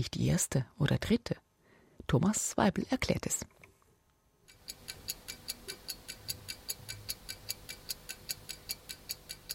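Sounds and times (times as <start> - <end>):
speech: 0.0 - 1.4, 2.1 - 3.6
clock ticking: 4.4 - 9.5.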